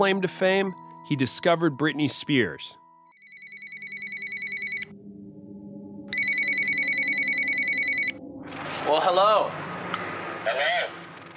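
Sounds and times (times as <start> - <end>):
speech: 0.0 - 2.8, 8.9 - 9.6
telephone ringing with electronic trill: 3.1 - 5.0, 6.1 - 8.2.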